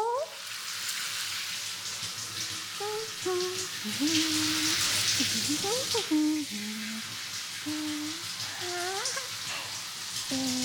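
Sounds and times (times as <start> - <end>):
shower water rinsing hair: 0.0 - 10.6
soft voice humming melodic tones: 2.8 - 9.6, 10.3 - 10.6
speech: 3.2 - 8.0.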